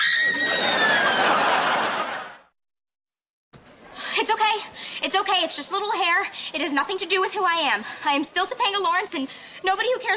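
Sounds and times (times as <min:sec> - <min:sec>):
woman screaming: 0:00.0 - 0:01.2
laughter: 0:00.3 - 0:02.5
speech: 0:04.2 - 0:10.1.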